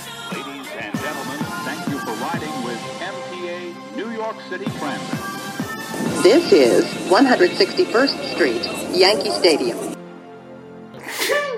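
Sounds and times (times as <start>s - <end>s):
speech: 4.3s - 5.4s, 6.2s - 10.0s
sneeze: 11.0s - 11.5s.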